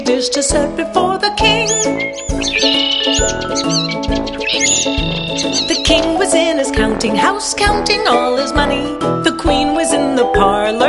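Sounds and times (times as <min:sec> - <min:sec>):
speech: 0:00.1 - 0:10.8
loud bouncy musical backing with a steady bass beat: 0:00.5 - 0:09.8
birds chirping and warbling: 0:01.4 - 0:06.4.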